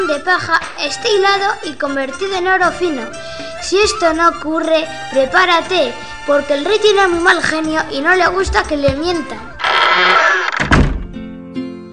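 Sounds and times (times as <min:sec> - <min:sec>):
speech: 0:00.1 - 0:10.2
tower door shutting with a heavy thump: 0:09.7 - 0:11.2.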